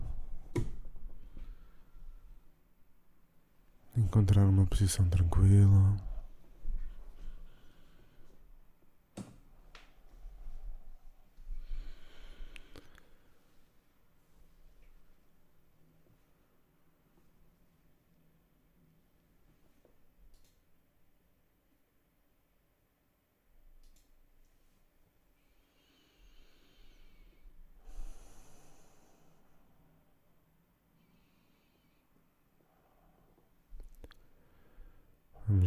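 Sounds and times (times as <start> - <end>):
slow deep breathing in and out during a guided meditation: 1.0 - 2.5, 6.2 - 8.6, 10.1 - 13.8, 25.4 - 30.3, 30.9 - 35.4
speech: 4.1 - 6.1.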